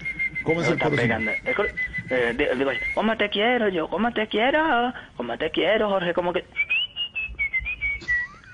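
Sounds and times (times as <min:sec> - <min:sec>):
person whistling a short wavering melody: 0:00.0 - 0:03.0, 0:06.6 - 0:08.5
faint low noise: 0:00.0 - 0:08.5
speech: 0:00.5 - 0:06.6.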